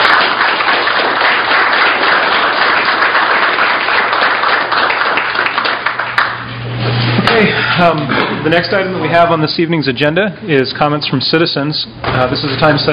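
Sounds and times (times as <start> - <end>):
room full of people applauding: 0.0 - 6.5
speech: 7.8 - 12.9.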